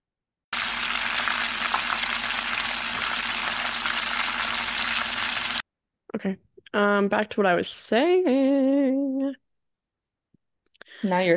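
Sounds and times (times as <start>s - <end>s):
chicken frying in hot oil: 0.5s - 5.6s
speech: 6.1s - 9.4s, 11.0s - 11.3s.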